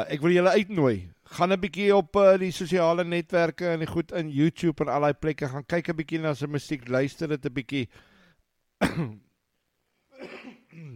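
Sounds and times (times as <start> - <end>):
speech: 0.0 - 8.1, 8.8 - 9.2
person clearing a throat with something caught in it: 8.8 - 9.3, 10.1 - 10.9.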